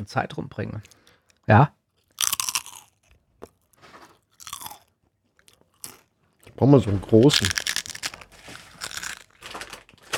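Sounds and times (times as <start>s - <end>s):
speech: 0.0s - 1.8s, 6.6s - 7.6s
crunching and chewing salted pretzel sticks: 2.0s - 6.5s, 7.1s - 10.1s.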